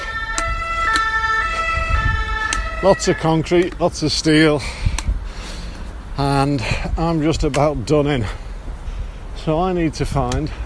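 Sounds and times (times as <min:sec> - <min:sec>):
ambulance emergency siren in city traffic: 0:00.0 - 0:03.7
low rumble of city traffic: 0:00.0 - 0:10.6
speech: 0:02.8 - 0:04.9, 0:06.2 - 0:08.4, 0:09.4 - 0:10.6.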